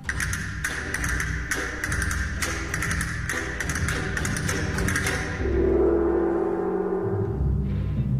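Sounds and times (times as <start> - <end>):
castanets clicking: 0.0 - 5.4
gong struck and ringing: 0.0 - 7.8.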